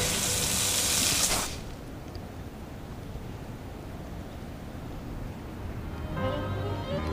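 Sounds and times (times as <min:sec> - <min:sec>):
heavy concentrated stream of water spraying: 0:00.0 - 0:01.7
faint hum: 0:00.0 - 0:07.1.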